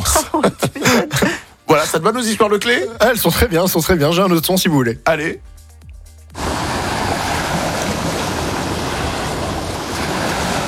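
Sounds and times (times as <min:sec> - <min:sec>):
laughter: 0:00.0 - 0:01.5
speech: 0:02.0 - 0:05.6
wind hiss: 0:06.3 - 0:10.6
sea waves roaring: 0:06.4 - 0:10.6.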